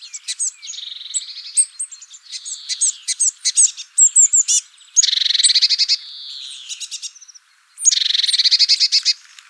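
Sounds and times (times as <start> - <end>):
Eurasian blue tit Cyanistes caeruleus calls and churring trills: 0.0 - 9.2.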